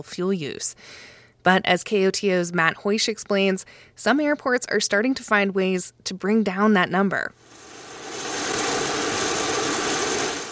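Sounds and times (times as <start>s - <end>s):
speech: 0.0s - 7.6s
aircraft engine roar during refueling on airport tarmac: 7.4s - 10.5s.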